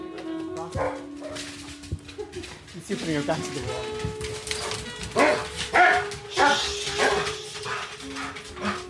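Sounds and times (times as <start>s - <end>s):
speech: 0.7s - 1.0s, 2.9s - 4.3s
dog barking during mating introduction: 0.7s - 1.5s, 4.6s - 8.8s.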